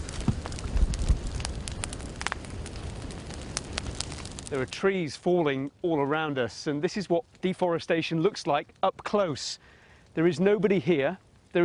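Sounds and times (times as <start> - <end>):
sharp pops and snaps of forest fire: 0.0 - 4.6
man-made forest fire crackling in the Amazon region: 0.0 - 11.6
speech: 4.5 - 11.6.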